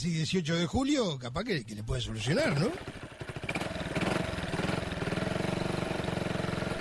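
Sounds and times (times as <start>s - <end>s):
speech: 0.0s - 3.0s
motorcycle engine starting and idling: 1.6s - 6.7s.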